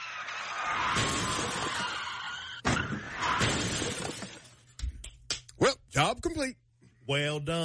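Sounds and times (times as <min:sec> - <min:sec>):
car chased by police skidding: 0:00.0 - 0:04.1
car crashing into police cruisers: 0:00.0 - 0:04.7
loud shattering and crunching metal: 0:00.7 - 0:04.8
breaking debris: 0:00.8 - 0:04.8
speech: 0:06.3 - 0:07.6.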